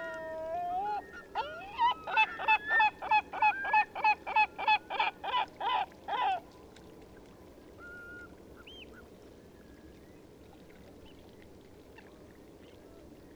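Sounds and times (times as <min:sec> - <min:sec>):
Eurasian curlew calls: 0:00.0 - 0:06.4.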